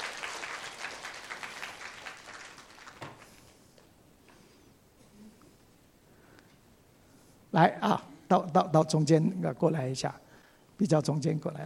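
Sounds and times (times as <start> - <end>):
audience applauding: 0.0 - 3.6
speech: 7.6 - 11.6.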